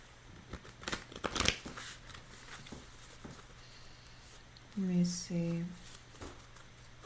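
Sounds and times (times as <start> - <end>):
cards rustling and tapping as they are drawn and laid out during a card reading: 0.3 - 3.6, 5.5 - 7.0
speech: 4.8 - 5.8.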